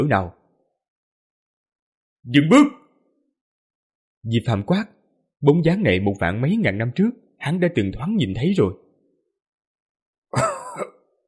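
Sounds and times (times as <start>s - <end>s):
speech: 0.0s - 0.4s, 2.2s - 2.8s, 4.2s - 8.8s, 10.3s - 10.9s
old person's harsh violent dry cough: 10.3s - 11.1s.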